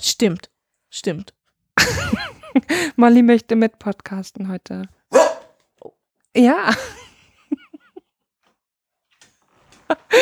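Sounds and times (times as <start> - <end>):
speech: 0.0 - 5.2, 6.4 - 7.0, 9.9 - 10.2
laughter: 1.8 - 2.7
dog behind a closed door giving whining yelps: 5.1 - 5.5.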